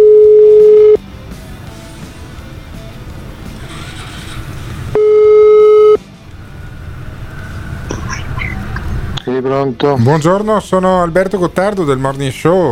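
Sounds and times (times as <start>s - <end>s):
telephone line tones before a call: 0.0s - 1.0s, 5.0s - 6.0s
traffic-like rumble: 1.6s - 5.0s, 6.0s - 12.7s
speech: 9.6s - 12.7s.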